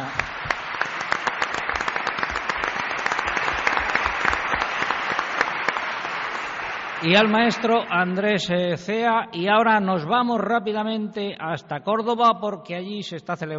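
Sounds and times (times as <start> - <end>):
audience applauding a choir: 0.0 - 8.3
speech: 7.0 - 13.5.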